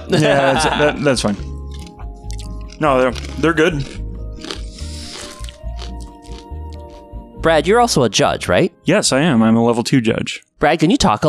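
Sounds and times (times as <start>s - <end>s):
laughter: 0.0s - 1.2s
speech: 0.1s - 1.5s, 2.8s - 4.0s, 7.4s - 11.2s
crisp snack being chewed: 1.7s - 7.1s.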